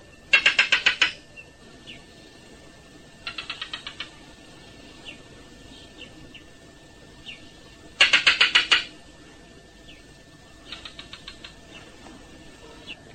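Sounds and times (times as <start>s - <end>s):
faint chirps: 0.0s - 13.1s
male barking geckos calling from sand burrows in the Kalahari: 0.3s - 2.1s, 3.1s - 6.6s, 7.2s - 9.0s, 9.8s - 12.1s.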